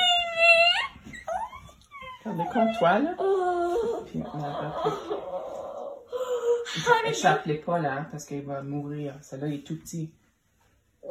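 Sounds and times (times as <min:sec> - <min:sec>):
dog whining and whimpering: 0:00.0 - 0:06.6
speech: 0:02.4 - 0:03.4, 0:04.1 - 0:05.4, 0:06.7 - 0:10.2.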